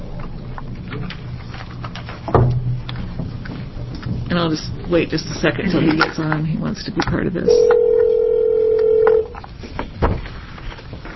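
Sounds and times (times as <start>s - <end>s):
speech: 4.4s - 7.8s
telephone dial tone: 7.6s - 9.3s.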